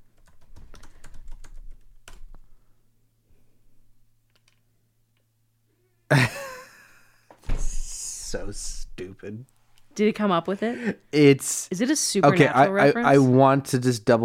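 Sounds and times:
rapid typing on a computer keyboard: 0.1 - 2.4
speech: 8.3 - 14.2.

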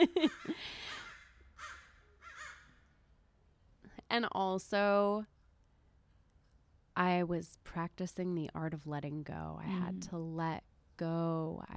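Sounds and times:
laughter: 0.0 - 1.0
crows cawing: 0.4 - 2.8
speech: 4.1 - 5.3, 7.0 - 11.7.

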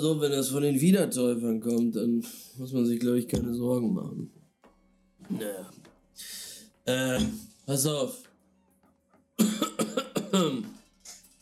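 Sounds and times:
speech: 0.0 - 4.4, 5.3 - 8.3, 10.3 - 10.8
person coughing during a tabletop role-playing session: 9.4 - 10.7.

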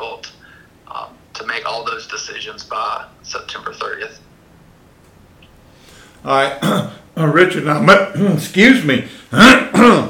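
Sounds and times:
speech: 1.7 - 4.3, 6.2 - 10.0
person clearing throat from harvest dust: 6.5 - 7.0, 9.7 - 10.0.

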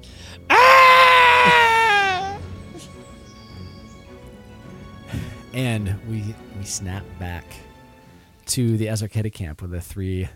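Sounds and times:
person performing a high-pitched gurgling scream: 0.5 - 2.4
speech: 5.6 - 7.7, 8.5 - 10.3.

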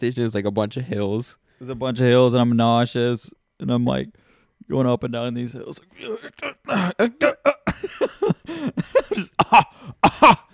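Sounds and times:
speech: 0.0 - 10.4
person fake coughing: 6.0 - 10.5.

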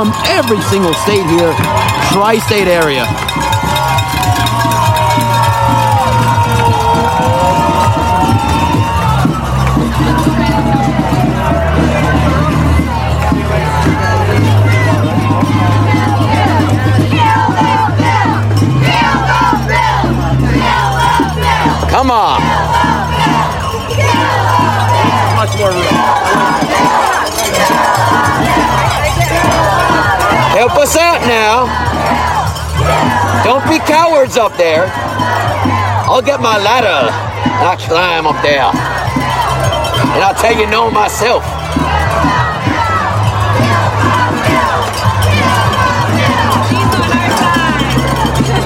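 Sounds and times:
speech: 0.0 - 3.3, 30.6 - 32.4, 33.4 - 38.9, 40.2 - 41.5
cowbell clanking: 0.0 - 48.6
horn-like noisemakers droning: 0.0 - 48.6
large crowd cheering and shouting at a rally: 0.0 - 48.6.

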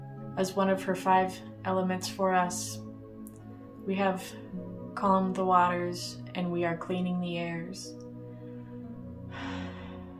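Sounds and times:
steady humming drone of music: 0.0 - 10.1
speech: 0.4 - 2.8, 3.9 - 8.0
deep breathy exhale: 8.4 - 10.1.

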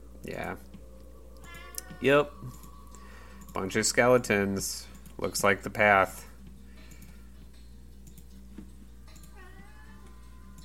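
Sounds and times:
steady low electrical hum: 0.0 - 10.6
soft ticks and clicks: 0.4 - 4.0, 6.4 - 9.4, 10.0 - 10.6
pet cat meowing: 1.4 - 2.5, 9.3 - 10.6
speech: 2.0 - 2.6, 3.6 - 6.1.

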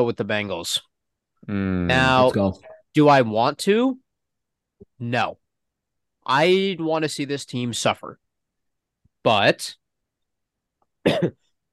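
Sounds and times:
speech: 0.0 - 4.0, 5.0 - 5.4, 6.3 - 8.2, 9.2 - 9.8, 11.0 - 11.4
throat clearing: 11.0 - 11.5.

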